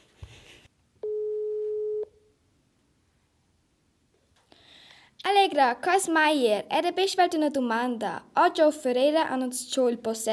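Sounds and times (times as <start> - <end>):
telephone line tone while calling the police station: 1.0 - 2.2
speech: 5.5 - 10.3.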